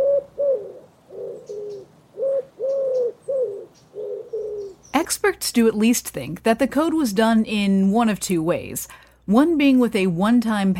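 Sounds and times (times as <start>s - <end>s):
pigeons cooing: 0.0s - 4.9s
faint hiss: 0.0s - 10.7s
speech: 5.2s - 10.7s.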